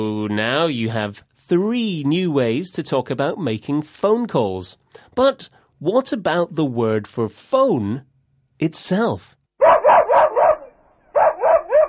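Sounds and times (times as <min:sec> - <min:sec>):
speech: 0:00.0 - 0:09.4
pet dog barking sharply: 0:09.6 - 0:11.8.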